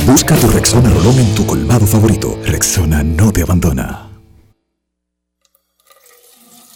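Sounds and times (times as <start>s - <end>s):
speech: 0.1s - 4.1s
water running from a tap: 5.7s - 6.7s.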